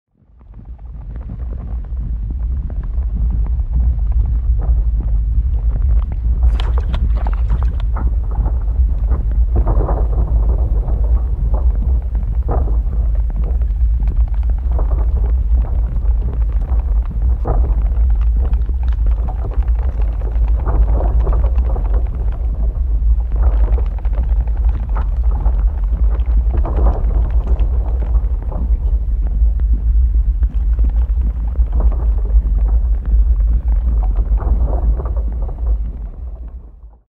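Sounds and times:
magma: 0.2s - 37.0s.

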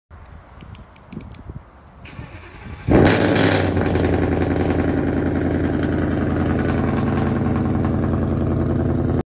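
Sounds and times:
Honda Civic exhaust: 2.4s - 9.2s.

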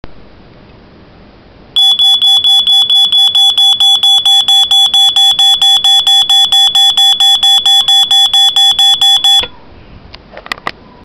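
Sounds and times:
fire alarm: 1.8s - 9.5s.

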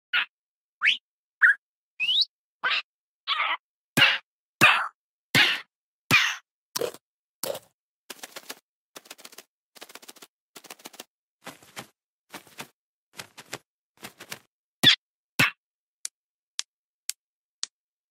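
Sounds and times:
parrot: 0.2s - 6.4s.

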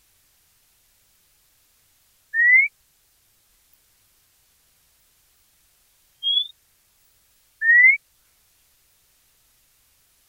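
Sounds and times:
White monjita upslurred whistle calls: 2.3s - 2.7s, 6.2s - 6.5s, 7.6s - 8.0s.

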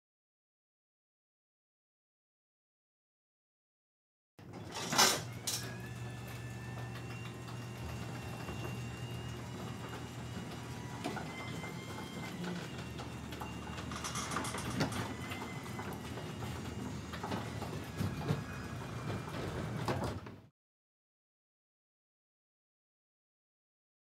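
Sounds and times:
parking garage door opening: 4.4s - 20.5s.

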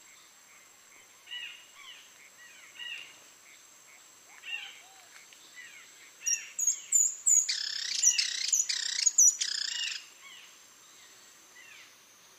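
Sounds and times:
speckled spinetail calling: 0.5s - 10.1s.

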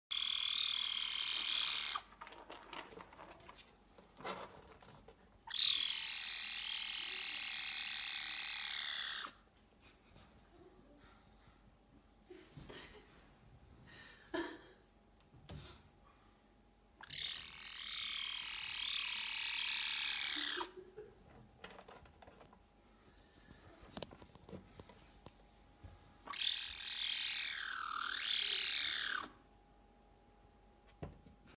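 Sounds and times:
caracal: 0.1s - 9.4s, 17.0s - 22.5s, 26.2s - 29.4s.

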